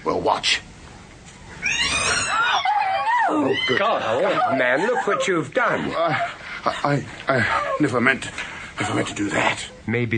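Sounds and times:
speech: 0.0s - 0.7s, 3.3s - 10.1s
startled cat yowling: 1.6s - 4.1s
laughter: 2.8s - 8.0s, 8.8s - 9.7s.

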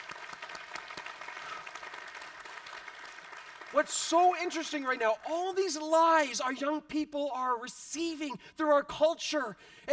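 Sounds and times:
crowd applauding: 0.0s - 5.5s
speech: 3.7s - 9.9s.

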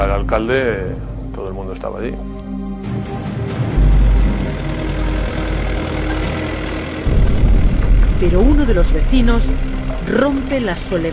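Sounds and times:
speech: 0.1s - 2.4s, 8.2s - 11.1s
heavy tractor engine revving: 3.0s - 11.1s.

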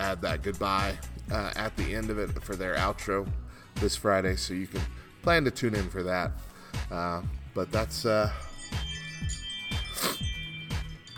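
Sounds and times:
speech: 0.1s - 8.5s
phone notification repeating electronic tone: 8.6s - 11.1s.

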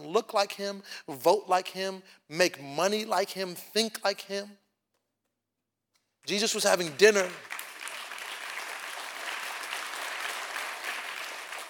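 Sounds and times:
speech: 0.1s - 4.6s, 6.3s - 7.6s
audience clapping during a church sermon: 6.2s - 11.6s.

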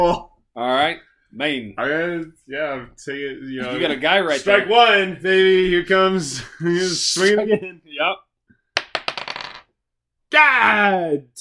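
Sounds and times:
speech: 0.0s - 8.3s, 10.3s - 11.3s
dice rolling on a hard table: 8.8s - 9.7s.

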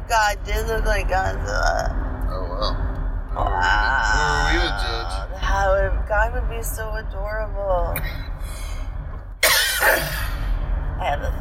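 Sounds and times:
speech: 0.1s - 2.0s, 2.6s - 8.6s, 9.8s - 10.3s, 11.0s - 11.3s
man coughing with an irritated throat: 9.4s - 10.4s.

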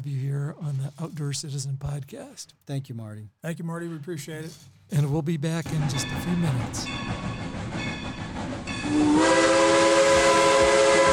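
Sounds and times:
speech: 0.0s - 7.4s, 8.9s - 9.4s
steam locomotive steam hissing: 6.8s - 11.1s
steam locomotive whistle of a scenic railroad: 8.8s - 11.1s.

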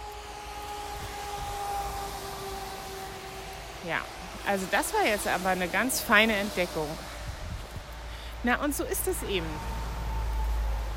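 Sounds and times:
road traffic noise from a nearby street: 0.0s - 10.9s
speech: 3.8s - 7.1s, 8.4s - 9.7s.

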